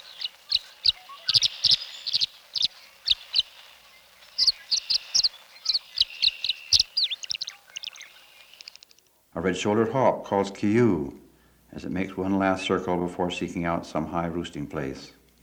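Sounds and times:
tree swallows twittering around birdhouses: 0.0s - 9.0s
speech: 9.4s - 15.2s.

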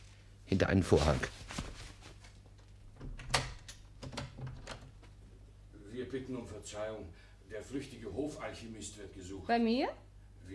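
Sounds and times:
speech: 0.5s - 1.4s, 6.2s - 10.5s
door being opened: 3.0s - 5.0s.

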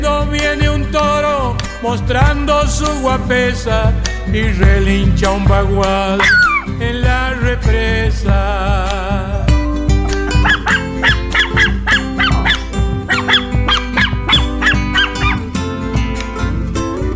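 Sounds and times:
loud continuous musical backing: 0.0s - 17.1s
speech: 1.8s - 9.4s
dog barking: 6.2s - 6.7s, 10.1s - 15.5s.

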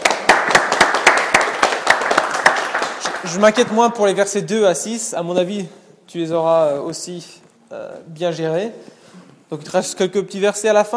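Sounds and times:
small group clapping at a Bible study: 0.0s - 4.0s
speech: 3.2s - 10.9s.

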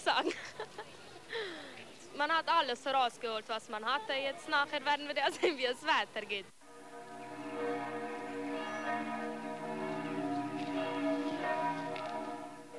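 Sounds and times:
speech: 2.2s - 6.6s
bells of the Protestant town parish church in Hermannstadt pealing: 6.7s - 12.7s.

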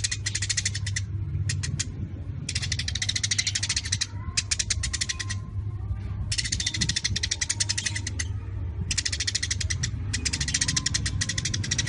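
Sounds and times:
Eurasian tree sparrow chattering: 0.0s - 5.6s, 6.3s - 11.8s
steady low hum: 0.0s - 11.8s.

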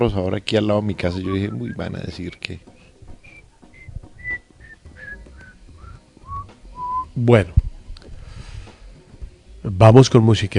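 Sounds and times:
speech: 0.0s - 2.7s, 7.2s - 7.6s, 9.6s - 10.5s
bird whistling rhythmically in short high clear notes: 1.1s - 2.0s, 3.2s - 7.1s.

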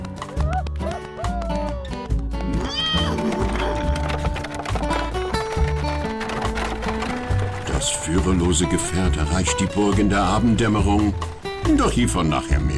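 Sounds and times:
horse hooves clip-clopping as a rider rides away: 0.0s - 12.7s
speech: 8.2s - 12.7s.

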